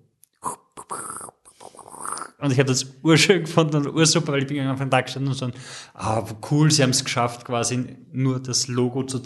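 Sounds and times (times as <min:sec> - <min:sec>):
voice mimicking a rabbit snorting, sniffling and hissing: 0:00.4 - 0:02.5
speech: 0:02.4 - 0:09.2.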